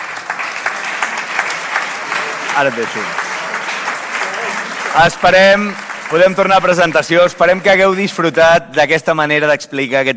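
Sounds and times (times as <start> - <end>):
audience applause: 0.0 - 8.0
speech: 2.6 - 3.2, 4.9 - 10.1.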